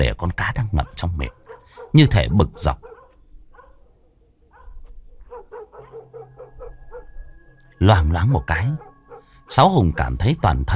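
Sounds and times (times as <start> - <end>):
speech: 0.0 - 2.9, 7.8 - 8.9, 9.5 - 10.7
dog barking sound effect: 0.8 - 3.9, 4.5 - 7.1.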